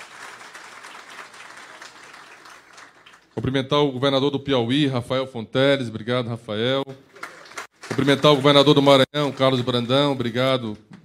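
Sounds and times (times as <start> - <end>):
audience applause at an official gathering in Brazil: 0.0 - 3.4, 7.1 - 10.5
speech: 3.4 - 7.1, 7.9 - 11.0.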